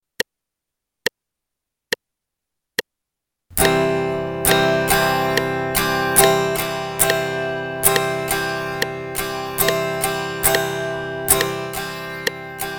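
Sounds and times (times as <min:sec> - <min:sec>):
guitar strumming a C chord in eighth notes: 0:03.5 - 0:12.7.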